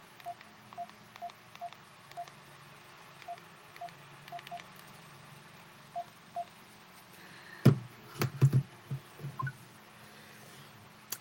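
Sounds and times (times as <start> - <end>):
faint hum: 0.0 - 11.1
house phone keypad beeps while dialing: 3.2 - 4.7, 9.4 - 9.6.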